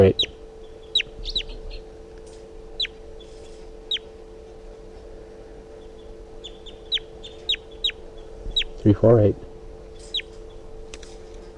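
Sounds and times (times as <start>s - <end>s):
speech: 0.0s - 0.3s, 8.8s - 9.5s
wild bird chittering during a swooping flight over a net: 0.0s - 2.0s, 2.7s - 4.2s, 5.7s - 9.0s, 9.8s - 10.8s
steady low hum: 0.0s - 11.5s.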